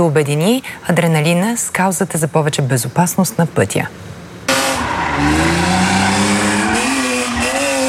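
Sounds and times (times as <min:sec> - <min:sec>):
speech: 0:00.0 - 0:04.2, 0:05.2 - 0:05.6
car engine roar: 0:04.5 - 0:07.8
car tires squealing while drifting around cones on a proving-ground track: 0:04.5 - 0:07.8.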